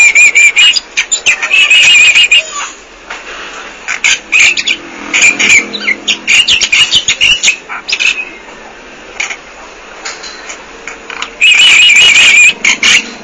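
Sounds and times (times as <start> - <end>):
Bali myna giving harsh chattering calls: 0.0 - 2.8, 3.9 - 8.4, 11.2 - 13.2.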